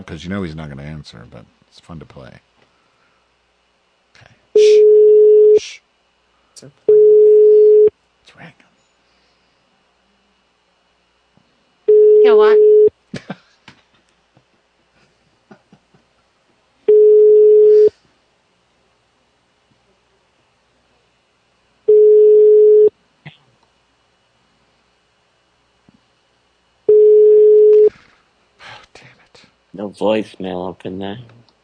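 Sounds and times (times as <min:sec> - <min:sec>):
speech: 0:00.0 - 0:02.5, 0:06.6 - 0:06.8, 0:08.4 - 0:08.6, 0:12.2 - 0:12.8, 0:29.8 - 0:31.4
fax machine tone on a phone call: 0:04.6 - 0:05.6, 0:06.9 - 0:07.9, 0:11.9 - 0:12.9, 0:16.9 - 0:17.9, 0:21.9 - 0:22.9, 0:26.9 - 0:27.9.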